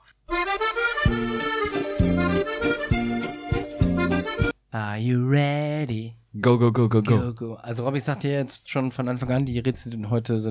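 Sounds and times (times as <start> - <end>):
riddle segment jingle with bright sustained tones and bouncing bass: 0.4 - 4.5
speech: 5.0 - 10.4.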